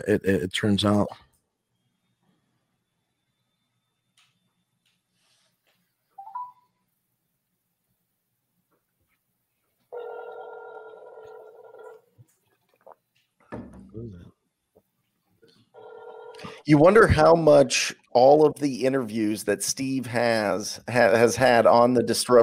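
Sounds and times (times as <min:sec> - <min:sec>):
speech: 0:00.0 - 0:01.2, 0:16.4 - 0:22.4
steady electronic phone ringing tone: 0:06.2 - 0:06.7, 0:09.9 - 0:12.1, 0:15.8 - 0:16.5.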